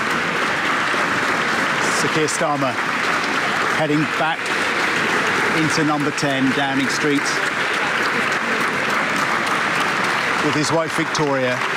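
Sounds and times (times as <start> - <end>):
staff applauding to welcome someone back into Number 10 Downing Street: 0.0 - 11.7
speech: 2.0 - 3.0, 3.8 - 4.7, 5.6 - 7.5, 10.4 - 11.7.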